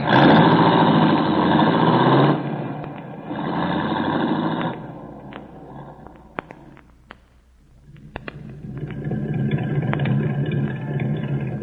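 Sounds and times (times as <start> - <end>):
light blue sports roadster small engine humming: 0.0 - 11.6
sharp clicks and knocks: 4.6 - 11.6.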